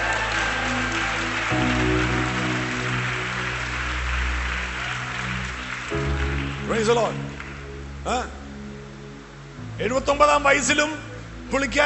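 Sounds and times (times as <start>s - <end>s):
audience clapping at a church gathering: 0.0s - 8.0s
soft sustained musical tones: 0.0s - 11.8s
speech: 6.8s - 7.4s, 8.0s - 8.4s, 9.8s - 11.8s.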